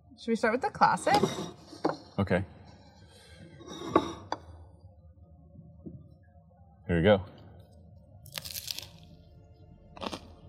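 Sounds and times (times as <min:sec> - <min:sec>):
speech: 0:00.2 - 0:01.6, 0:02.2 - 0:02.6, 0:06.9 - 0:07.3
crunchy bite into BLT sandwich: 0:08.3 - 0:09.1.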